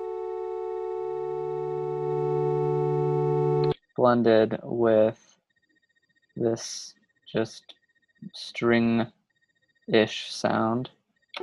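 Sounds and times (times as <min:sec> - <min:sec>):
buzzy square-wave synthesizer lead with organ-like tone: 0:00.0 - 0:04.4
speech: 0:04.0 - 0:05.4, 0:06.4 - 0:09.2, 0:09.9 - 0:11.4.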